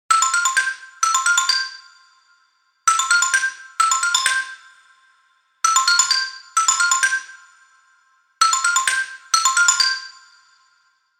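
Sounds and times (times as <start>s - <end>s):
simple xylophone ringtone: 0.1s - 1.8s, 2.9s - 4.6s, 5.6s - 7.4s, 8.4s - 10.6s.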